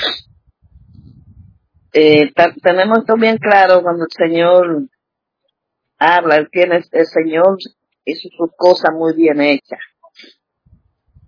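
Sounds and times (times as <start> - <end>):
person sneezing: 0.0 - 0.3
low rumbling: 0.0 - 3.7, 10.7 - 11.2
speech: 2.0 - 4.9, 6.0 - 10.4.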